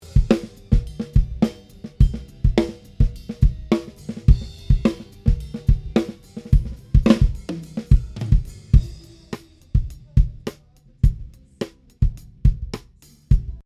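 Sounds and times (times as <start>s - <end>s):
snare drum without effects or EQ: 0.0s - 10.6s
bass drum without effects or EQ: 0.0s - 13.6s.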